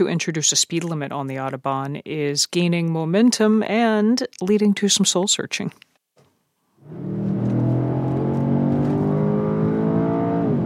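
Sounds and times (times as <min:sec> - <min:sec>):
speech: 0:00.0 - 0:05.9
Mercedes S-Class convertible 612-horsepower AMG engine droning on the Autobahn: 0:06.8 - 0:10.6.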